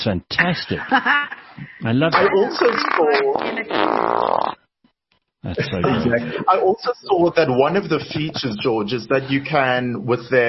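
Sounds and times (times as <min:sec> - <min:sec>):
speech: 0:00.0 - 0:04.6, 0:05.4 - 0:10.4
synthetic fart sound effect from a Tesla car: 0:02.2 - 0:04.6
laughter: 0:05.5 - 0:06.7.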